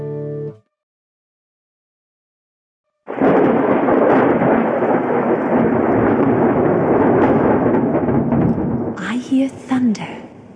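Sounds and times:
loud rolling thunder: 0:03.1 - 0:10.5.

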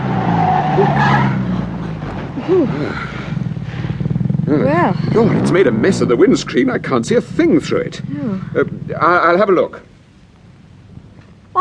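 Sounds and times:
car skidding under hard braking with the handbrake pulled: 0:00.0 - 0:08.8
low car engine drone: 0:00.0 - 0:11.5
short squealing burst: 0:00.2 - 0:01.5
speech: 0:02.5 - 0:03.2, 0:04.5 - 0:09.9.

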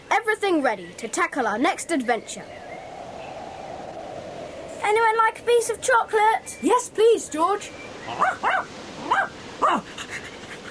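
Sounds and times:
speech: 0:00.4 - 0:02.7, 0:04.8 - 0:10.0
dog barking: 0:08.1 - 0:09.8.

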